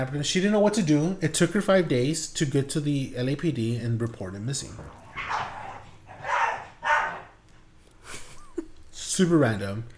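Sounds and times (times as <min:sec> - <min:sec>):
speech: 0:00.0 - 0:05.5, 0:09.2 - 0:09.9
low hum: 0:00.0 - 0:09.9
coyotes barking and yipping outdoors: 0:04.8 - 0:07.4.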